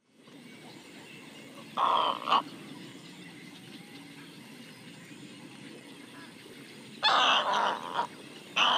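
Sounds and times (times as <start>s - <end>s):
little egret calling: 0.7s - 2.9s, 6.0s - 8.7s.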